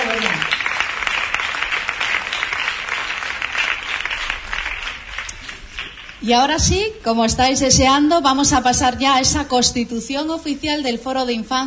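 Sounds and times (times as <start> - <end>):
audience applauding: 0.0 - 6.2
speech: 6.2 - 11.6.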